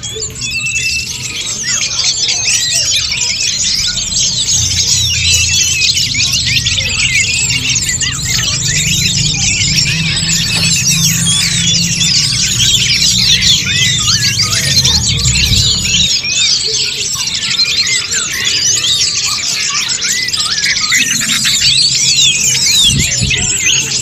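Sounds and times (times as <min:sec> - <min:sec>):
birds singing in a dense chorus: 0:00.0 - 0:24.0
low rumble: 0:04.6 - 0:16.2.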